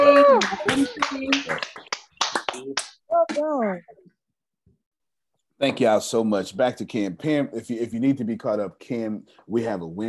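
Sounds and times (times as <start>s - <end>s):
overlapping voices calling out and cheering over a group call: 0.0s - 1.9s
several people clapping over a group call: 0.0s - 3.5s
speech: 3.5s - 4.0s, 5.6s - 10.0s.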